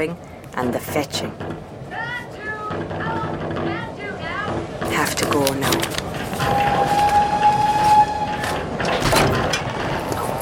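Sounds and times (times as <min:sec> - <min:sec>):
speech: 0:00.0 - 0:01.7, 0:05.2 - 0:06.7
train rumbling as it pulls into the station: 0:00.0 - 0:10.4
thin high train brake squeal: 0:06.5 - 0:08.6.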